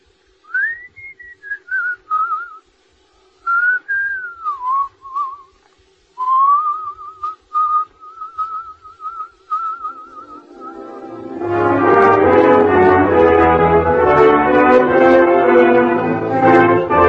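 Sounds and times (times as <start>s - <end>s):
faint steady hum: 0.0s - 17.0s
person whistling a slow wavering melody: 0.4s - 2.6s, 3.4s - 5.6s, 6.2s - 11.2s.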